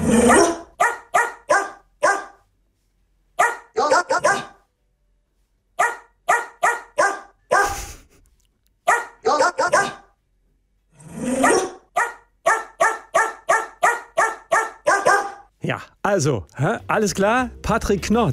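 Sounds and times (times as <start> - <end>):
speech: 0.1 - 0.6, 15.7 - 18.3
female dog barking: 0.2 - 2.4, 3.4 - 4.7, 5.8 - 7.9, 8.8 - 10.2, 11.4 - 15.5.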